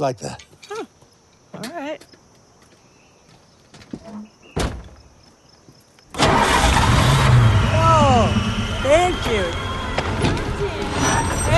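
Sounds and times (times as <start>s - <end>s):
speech: 0.0s - 0.5s
car engine starting: 6.1s - 11.5s.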